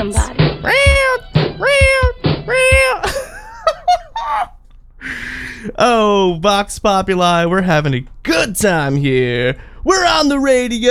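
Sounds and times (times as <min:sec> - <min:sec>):
speech: 0:00.0 - 0:00.8, 0:05.8 - 0:10.8
cat meowing and yowling: 0:00.0 - 0:03.0
laughter: 0:00.7 - 0:04.6.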